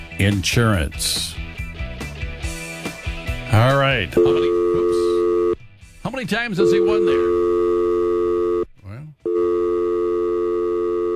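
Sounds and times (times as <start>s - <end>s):
speech: 0.2s - 1.4s, 3.5s - 4.7s, 6.1s - 7.8s
telephone busy tone on a new phone system with all lines loaded: 4.2s - 5.6s, 6.6s - 8.7s, 9.3s - 11.1s.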